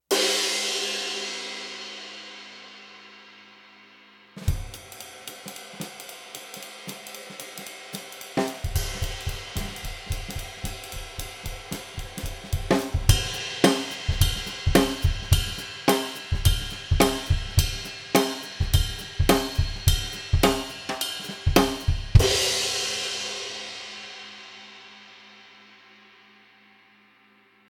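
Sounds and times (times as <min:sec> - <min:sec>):
Istanbul K Zildjian cymbal: 0:00.1 - 0:27.6.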